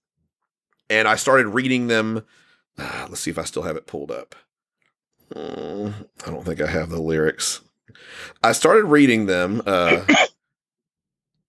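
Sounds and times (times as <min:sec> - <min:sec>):
speech: 0:00.9 - 0:04.5, 0:05.3 - 0:10.3
person sneezing: 0:09.8 - 0:10.3.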